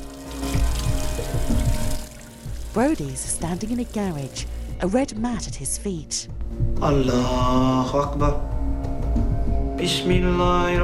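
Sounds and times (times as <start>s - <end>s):
water from a running tap: 0.0s - 4.8s
speech: 2.8s - 8.5s, 9.8s - 10.8s.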